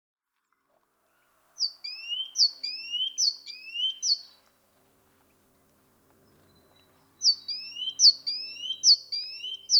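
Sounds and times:
great tit Parus major singing: 0:01.6 - 0:04.4, 0:06.3 - 0:09.7.

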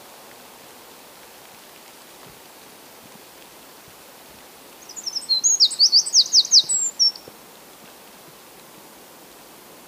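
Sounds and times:
background hiss: 0:00.0 - 0:09.8
Eurasian wren Troglodytes troglodytes singing: 0:04.8 - 0:07.3.

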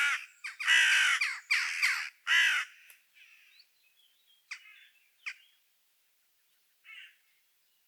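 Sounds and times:
carrion crow Corvus corone giving harsh rasping caws: 0:00.0 - 0:03.4, 0:06.9 - 0:07.2.

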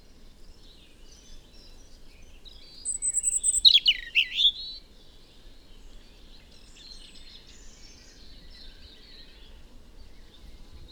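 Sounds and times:
European robin Erithacus rubecula singing: 0:02.8 - 0:04.8.

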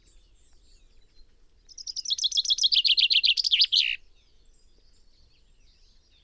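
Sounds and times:
common chaffinch Fringilla coelebs singing: 0:00.0 - 0:04.0.

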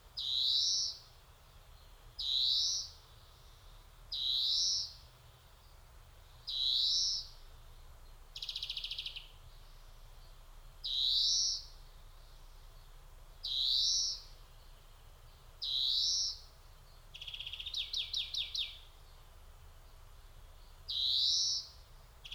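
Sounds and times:
European greenfinch Chloris chloris buzzy trills and wheezes: 0:00.2 - 0:01.1, 0:01.8 - 0:05.0, 0:06.5 - 0:07.4, 0:08.4 - 0:18.9, 0:20.6 - 0:22.3.

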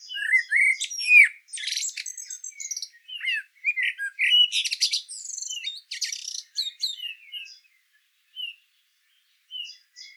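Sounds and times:
Common blackbird Turdus merula whistling: 0:00.0 - 0:07.1.

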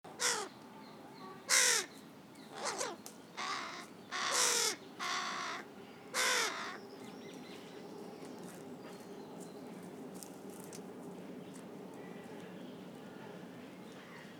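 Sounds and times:
carrion crow Corvus corone giving harsh rasping caws: 0:00.2 - 0:00.5, 0:01.5 - 0:01.9, 0:02.5 - 0:06.8.

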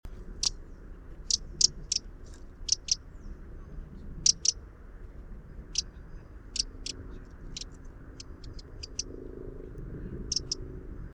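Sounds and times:
steady low rumbling background: 0:00.1 - 0:11.1
Eurasian wren Troglodytes troglodytes ticking calls: 0:01.2 - 0:03.1, 0:04.2 - 0:04.6, 0:05.7 - 0:09.1, 0:10.2 - 0:10.6.

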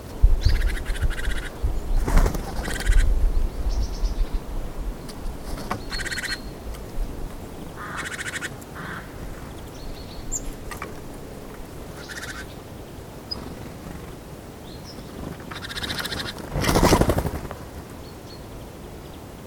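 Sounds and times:
low background noise: 0:00.0 - 0:19.4
Great tit Parus major churring calls: 0:00.4 - 0:01.6, 0:02.5 - 0:03.1, 0:05.8 - 0:06.6, 0:07.6 - 0:10.7, 0:11.7 - 0:12.7, 0:15.3 - 0:17.2.

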